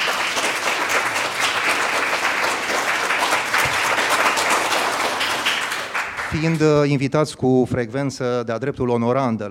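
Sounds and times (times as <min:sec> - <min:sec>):
crowd applauding: 0:00.0 - 0:06.9
speech: 0:06.3 - 0:09.4.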